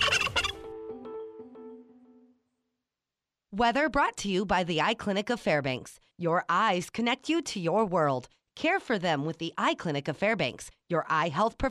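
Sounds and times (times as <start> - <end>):
turkey gobbling: 0.0 - 0.6
speech: 3.6 - 11.6.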